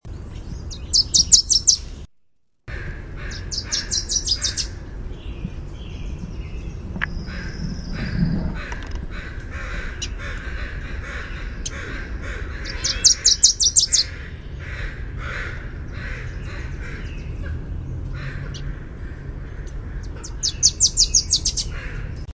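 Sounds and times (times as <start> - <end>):
Wilson's Warbler singing: 0.0 - 2.0, 3.2 - 22.3.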